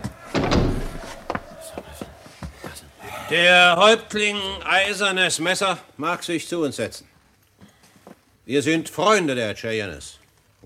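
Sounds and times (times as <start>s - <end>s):
door swung shut: 0.0s - 1.6s
speech: 3.3s - 7.1s, 8.5s - 10.6s.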